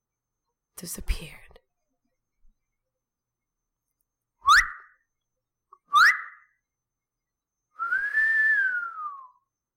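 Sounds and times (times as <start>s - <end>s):
speech: 0.8s - 1.4s
person whistling to hail a cab: 4.4s - 4.9s, 5.9s - 6.4s, 7.8s - 9.5s.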